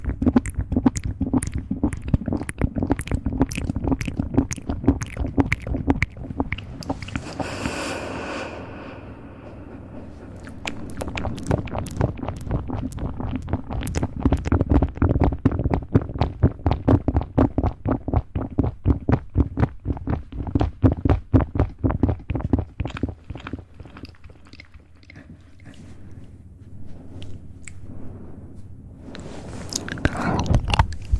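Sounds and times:
rapid wet mouth clicks and smacks: 0:00.0 - 0:08.1, 0:10.3 - 0:25.9, 0:29.7 - 0:31.1
low muffled rumble: 0:00.0 - 0:18.2, 0:25.2 - 0:31.1
brief airy hiss: 0:07.0 - 0:09.7.

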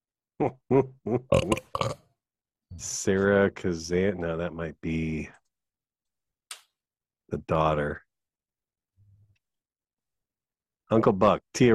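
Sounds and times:
speech: 0:00.4 - 0:02.0, 0:02.8 - 0:05.4, 0:07.3 - 0:08.0, 0:10.9 - 0:11.7
short croaky burps: 0:00.4 - 0:02.1.

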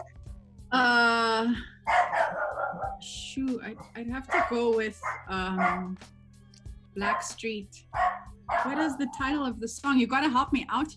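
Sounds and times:
speech: 0:00.7 - 0:01.7, 0:03.0 - 0:06.2, 0:07.0 - 0:10.9
female pet dog barking: 0:01.8 - 0:03.0, 0:03.8 - 0:06.0, 0:07.0 - 0:09.3.

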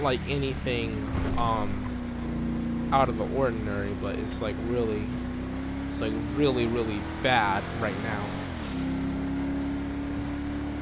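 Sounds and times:
speech: 0:00.0 - 0:01.9, 0:02.9 - 0:05.2, 0:06.0 - 0:08.4
car driving at 70 on Polito Boulevard through town outskirts: 0:00.0 - 0:10.8.

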